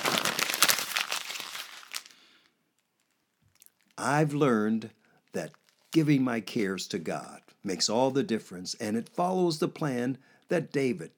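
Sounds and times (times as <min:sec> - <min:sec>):
paper being crumpled: 0:00.0 - 0:03.1
speech: 0:04.0 - 0:11.1.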